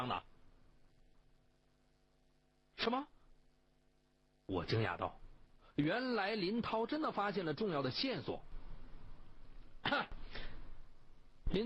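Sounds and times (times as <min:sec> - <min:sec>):
speech: 0:00.0 - 0:00.3, 0:02.8 - 0:03.2, 0:04.5 - 0:05.2, 0:05.8 - 0:08.5, 0:09.8 - 0:10.2
man clearing his throat: 0:09.8 - 0:10.2.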